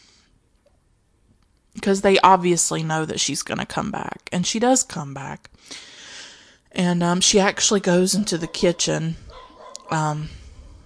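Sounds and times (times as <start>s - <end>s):
speech: 1.8s - 5.9s, 6.8s - 10.4s
dog barking: 8.1s - 10.1s.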